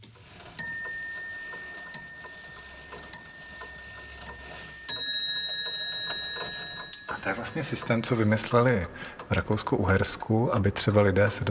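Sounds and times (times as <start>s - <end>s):
antique repeater clock striking bell tones: 0.3s - 8.8s
speech: 7.2s - 11.5s.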